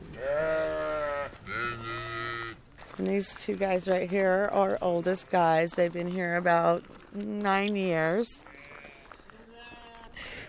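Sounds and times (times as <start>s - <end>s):
fainting goats bleating: 0.1s - 2.6s, 8.4s - 10.4s
speech: 3.0s - 8.5s.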